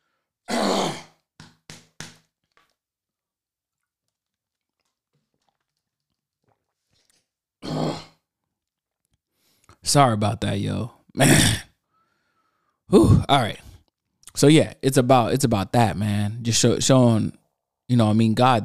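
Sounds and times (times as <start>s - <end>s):
speech: 9.9s - 11.7s, 13.2s - 13.6s, 14.4s - 18.6s
throat clearing: 11.2s - 11.7s.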